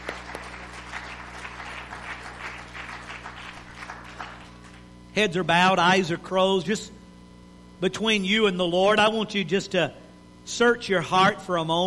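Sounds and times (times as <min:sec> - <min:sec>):
audience applauding in a large room: 0:00.0 - 0:04.9
speech: 0:05.2 - 0:07.0, 0:07.8 - 0:11.8.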